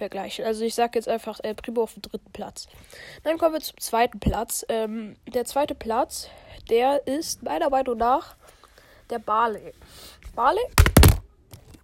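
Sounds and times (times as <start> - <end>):
speech: 0.0 - 10.9
phone dropping onto a hard surface: 10.8 - 11.2.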